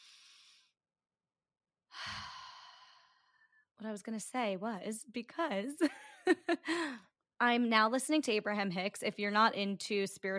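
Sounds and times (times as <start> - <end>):
deep breath in and out: 0.0 - 0.8, 1.9 - 3.6
speech: 3.8 - 10.3.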